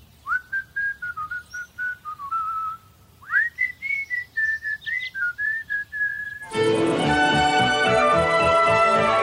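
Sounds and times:
whistled advertising jingle melody: 0.5s - 9.2s
dense burst of music: 6.5s - 9.2s.

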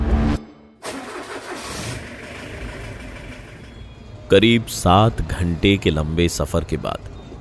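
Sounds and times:
taxi engine cranking and starting: 0.0s - 4.0s
speech: 4.3s - 7.2s.

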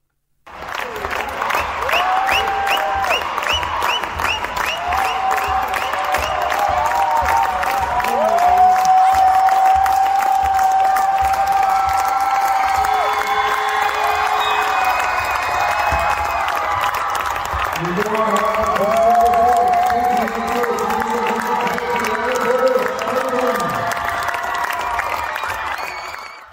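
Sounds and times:
dense applause in a sports hall: 0.5s - 26.5s
large crowd in a sports hall roaring and cheering a women's team championship win: 0.5s - 26.5s
whistles in a sports hall crowd: 1.6s - 6.5s, 13.2s - 16.0s, 25.7s - 26.5s
monotone voice speaking over a loudspeaker: 17.8s - 24.0s.

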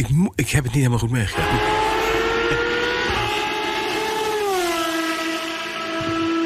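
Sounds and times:
speech: 0.0s - 1.9s
V12 engine of a 1993 Ferrari Formula 1 car screaming: 1.3s - 6.4s.

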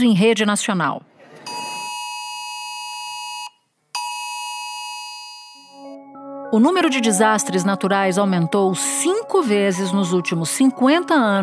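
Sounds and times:
speech: 0.0s - 1.1s, 6.5s - 11.4s
mobile phone emergency alert tone: 1.4s - 5.9s.

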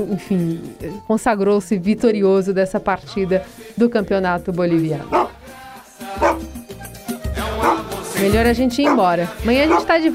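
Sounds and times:
speech: 0.0s - 5.6s, 8.2s - 10.1s
dog barking on a football pitch: 5.0s - 5.4s, 6.2s - 6.4s, 7.6s - 8.0s, 8.8s - 10.0s.

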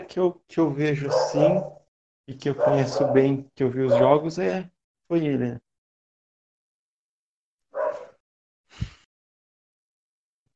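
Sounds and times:
speech: 0.1s - 5.6s
dog barking: 1.0s - 1.9s, 2.5s - 4.2s, 7.7s - 8.2s.

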